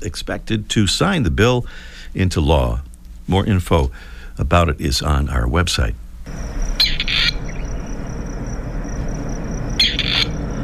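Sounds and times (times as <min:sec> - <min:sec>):
speech: 0:00.0 - 0:06.5
low background rumble: 0:00.0 - 0:10.6
Gray partridge giving harsh scratchy rasping calls: 0:06.6 - 0:08.1, 0:09.7 - 0:10.6.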